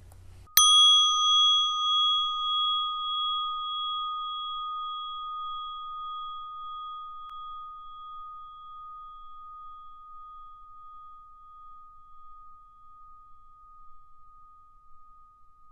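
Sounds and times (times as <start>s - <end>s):
single bell ringing to end meditation: 0.6s - 7.9s.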